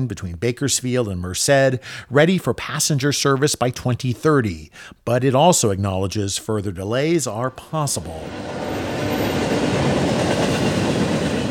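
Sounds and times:
speech: 0.0 - 9.5
slow-moving freight train rolling on rails: 8.0 - 11.5
freight train wheels clacking over rail joints: 8.2 - 11.5.

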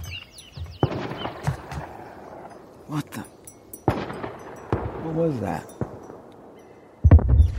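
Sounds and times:
distant gunshots from hunters on a hill near a cell phone tower: 0.8 - 2.4, 3.9 - 7.4
speech: 2.9 - 3.4, 5.0 - 5.8.

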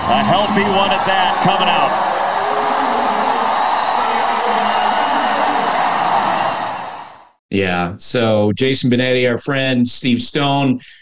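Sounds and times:
large crowd cheering at a baseball game: 0.0 - 7.4
speech: 0.1 - 2.1, 7.5 - 10.9.

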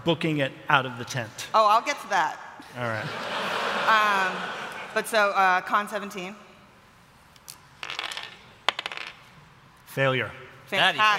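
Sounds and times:
speech: 0.0 - 6.4, 10.0 - 11.1
laughter: 2.8 - 5.1
dice clattering across a hard tabletop: 7.8 - 9.4.

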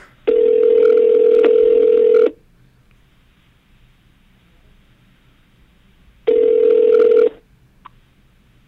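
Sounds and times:
phone line ringing on an outgoing call: 0.3 - 2.4, 6.3 - 7.4.

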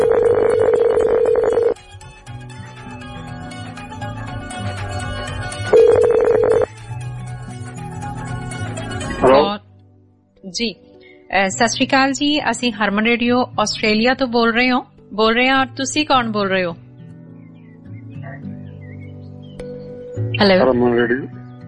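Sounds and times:
telephone ringback tone of an outgoing call: 0.0 - 1.8, 5.5 - 6.7
steady music bed: 0.0 - 21.6
speech: 10.6 - 16.8, 20.4 - 21.4.

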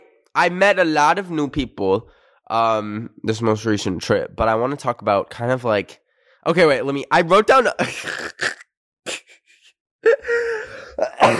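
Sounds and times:
speech: 0.4 - 8.6
laugh turning into cough: 7.8 - 11.3.

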